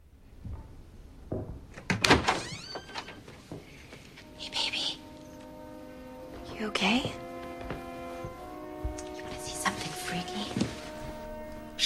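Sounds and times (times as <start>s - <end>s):
low hiss: 0.0s - 11.8s
door opening with a soft thunk and creaking scrape: 1.7s - 3.4s
speech: 6.6s - 7.2s.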